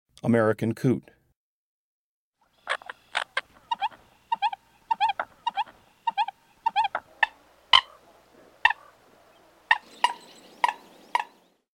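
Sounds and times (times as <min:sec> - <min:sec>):
American coot: 0:02.6 - 0:11.4.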